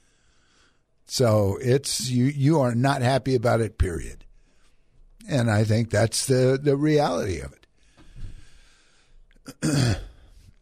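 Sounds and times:
speech: 1.1s - 4.2s, 5.3s - 7.6s, 9.5s - 10.0s
person coughing into a microphone: 9.5s - 10.3s.

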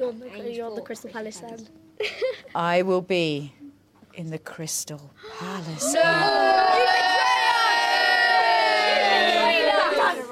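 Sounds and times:
speech: 0.1s - 3.6s, 4.2s - 7.0s
crowd of young fans booing: 5.8s - 10.3s.

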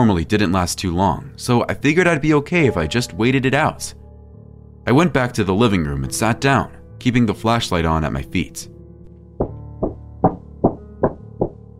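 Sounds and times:
speech: 0.0s - 4.0s, 4.8s - 8.7s
heavy thudding knocking on a door: 9.4s - 11.7s.

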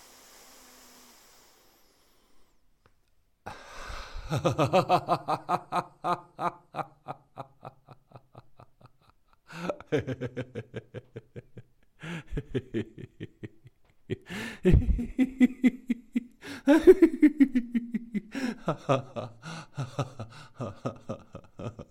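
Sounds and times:
person breathing in and out in a guided breathing exercise: 3.5s - 4.5s, 9.4s - 9.9s, 11.9s - 12.7s, 14.2s - 15.0s, 16.3s - 17.0s, 18.2s - 21.1s
laughter: 4.3s - 21.8s.

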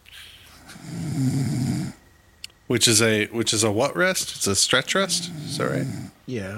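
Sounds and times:
person snoring: 0.1s - 2.0s, 4.9s - 6.2s
speech: 2.7s - 6.5s.

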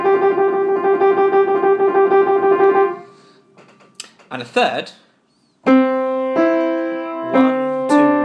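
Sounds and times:
piano trill: 0.0s - 3.3s, 5.6s - 8.2s
speech: 4.3s - 5.8s.

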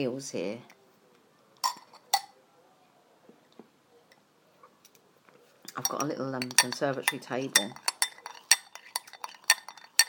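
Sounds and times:
speech: 0.0s - 0.8s, 5.8s - 7.9s
spoon stirring instant coffee in a cup: 1.6s - 2.3s, 5.7s - 10.0s.

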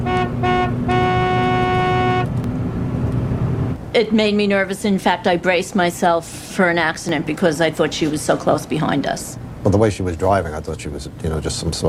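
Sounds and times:
car horn honking: 0.0s - 2.4s
low rumble of road and engine noise: 0.0s - 11.8s
speech: 4.0s - 11.8s.

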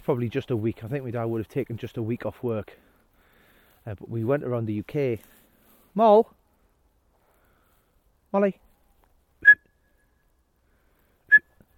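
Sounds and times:
speech: 0.0s - 2.9s, 3.8s - 5.4s, 6.0s - 6.4s, 8.3s - 8.6s
person whistling loudly to call a dog: 9.4s - 10.2s, 11.3s - 11.6s.

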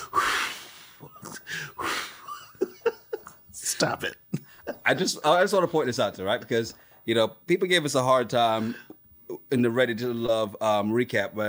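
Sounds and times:
woman breathing heavily while lifting 5-pound weights: 0.0s - 2.3s
speech: 3.8s - 11.4s.

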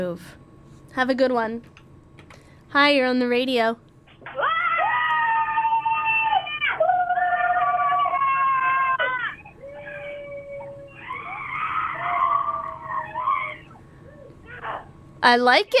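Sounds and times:
speech: 0.0s - 0.4s, 1.0s - 1.8s, 2.7s - 4.4s, 15.3s - 15.7s
three women screaming at different pitches in a radio call-in screaming contest: 4.4s - 13.7s.

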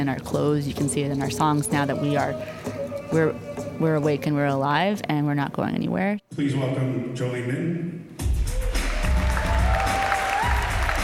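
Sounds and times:
speech: 0.0s - 8.1s
large crowd applauding: 8.4s - 11.0s.

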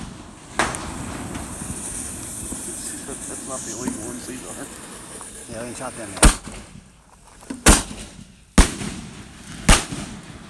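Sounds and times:
fireworks exploding overhead near a barn: 0.0s - 10.4s
speech: 3.5s - 4.9s, 5.5s - 6.7s.

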